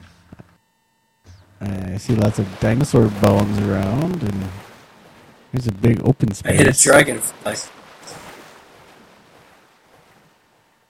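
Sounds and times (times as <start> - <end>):
speech: 1.6 - 4.6, 5.5 - 7.8
water splashing in a virtual world: 1.6 - 10.8
soft wash of moving water in a virtual world: 2.0 - 5.6, 6.7 - 10.8.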